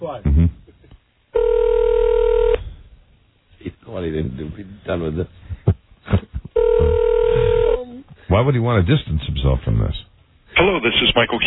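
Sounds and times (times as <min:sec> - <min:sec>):
speech: 0:00.0 - 0:00.6, 0:04.0 - 0:05.4, 0:08.3 - 0:10.0, 0:10.6 - 0:11.4
telephone tone as a call is placed: 0:01.4 - 0:02.6, 0:06.6 - 0:07.8.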